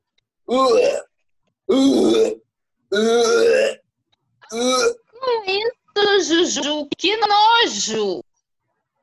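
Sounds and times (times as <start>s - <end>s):
speech: 0.5s - 1.1s, 1.7s - 3.8s, 4.5s - 8.2s
voice imitating hollow cave-like retching in a bathroom: 0.5s - 3.9s, 4.5s - 5.1s.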